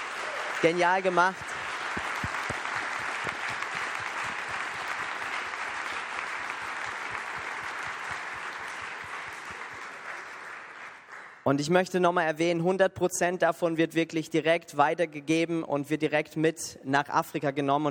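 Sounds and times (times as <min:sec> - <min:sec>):
audience applause: 0:00.0 - 0:11.4
speech: 0:00.6 - 0:01.5, 0:11.5 - 0:17.8.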